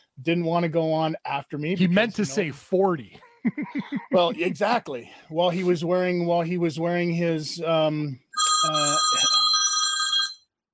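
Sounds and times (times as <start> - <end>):
speech: 0.2 - 9.4
laughter: 1.7 - 2.5, 3.5 - 4.8
cell phone ringing with an old-fashioned bell-style ringtone: 8.4 - 10.5.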